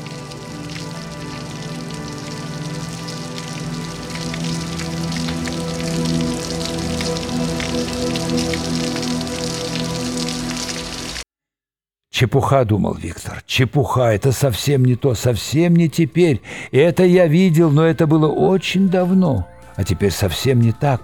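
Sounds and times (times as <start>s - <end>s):
steady rain pattering on a metal surface: 0.0s - 11.2s
speech: 12.2s - 21.0s.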